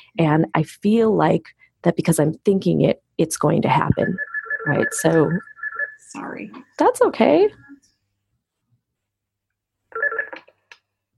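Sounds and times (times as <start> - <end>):
speech: 0.2 - 5.5, 6.1 - 7.6
electronic phone ring: 3.9 - 6.2, 9.9 - 10.5.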